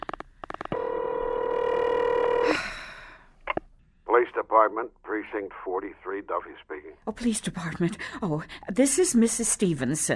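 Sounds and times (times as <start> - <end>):
telephone being dialed: 0.0 - 2.4
speech: 4.4 - 10.1.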